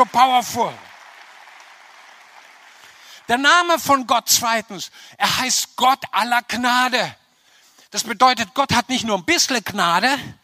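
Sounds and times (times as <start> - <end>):
speech: 0.0 - 0.8, 3.3 - 7.2, 7.9 - 10.4
audience applauding: 0.0 - 3.7.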